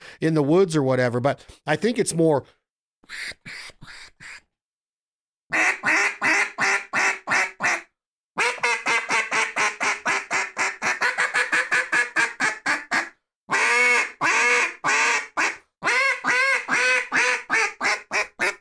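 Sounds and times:
speech: 0.2 - 4.0
duck call blown to imitate hen duck quacks: 5.5 - 18.5.

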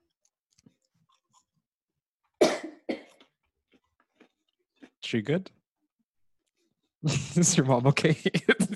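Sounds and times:
person coughing harshly: 2.4 - 3.3
speech: 5.1 - 5.6, 7.0 - 8.7.

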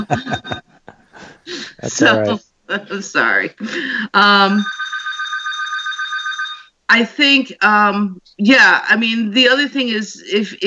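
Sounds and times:
speech: 0.0 - 0.6, 1.8 - 4.8, 6.9 - 10.6
laughter: 0.0 - 2.4
telephone ringing with a steady electronic tone: 4.2 - 6.7.

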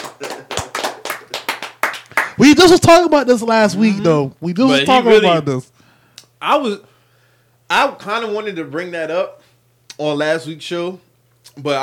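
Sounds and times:
sharp hand claps in applause: 0.0 - 2.4
speech: 2.4 - 5.7, 6.4 - 6.9, 7.7 - 9.4, 10.0 - 11.8.

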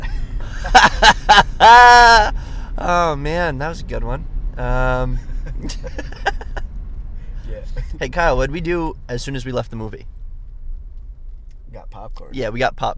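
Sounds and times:
people laughing: 0.0 - 2.3, 5.1 - 6.6
low rumble of car interior noise while driving: 0.0 - 12.9
speech: 0.7 - 6.5, 7.5 - 10.2, 11.7 - 12.9.

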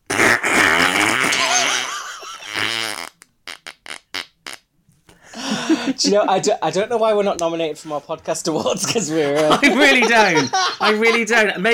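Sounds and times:
wet raspberry blown with the mouth to imitate a fart: 0.0 - 4.7
short bursts of laughter: 1.1 - 2.7, 5.4 - 6.6, 8.8 - 11.7
speech: 6.0 - 11.7.

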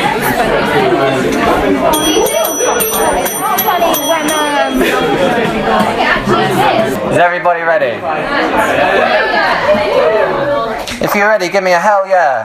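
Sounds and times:
loud constant hubbub of crowd chatter: 0.0 - 11.0
small hand bell ringing: 2.0 - 5.5
speech: 11.1 - 12.4.

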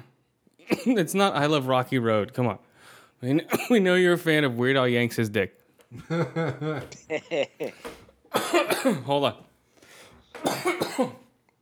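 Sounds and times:
man coughing: 0.7 - 1.1, 3.4 - 3.8, 6.5 - 6.9, 7.6 - 9.2, 10.4 - 11.3
speech: 0.8 - 9.5, 10.4 - 11.2
laughter: 6.0 - 7.8.

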